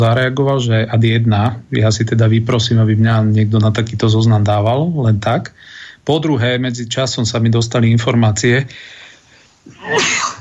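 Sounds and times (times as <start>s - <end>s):
speech: 0.0s - 9.0s, 9.6s - 10.3s
sharp intake of breath: 5.6s - 6.0s
person sneezing: 9.7s - 10.4s.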